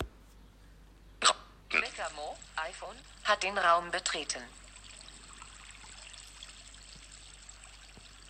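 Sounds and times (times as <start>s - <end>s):
water trickling from a village fountain: 1.8s - 8.2s
speech: 2.1s - 4.6s.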